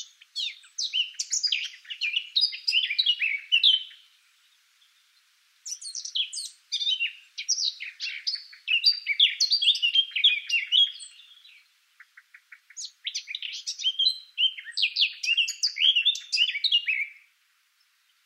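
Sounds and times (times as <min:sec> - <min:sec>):
Eurasian blackcap Sylvia atricapilla song: 0:00.0 - 0:18.2.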